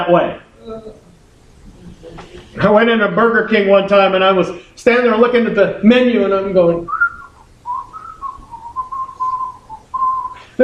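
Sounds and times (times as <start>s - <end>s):
speech: 0.0s - 1.1s, 1.8s - 7.0s
person whistling a short wavering tune: 6.9s - 10.6s.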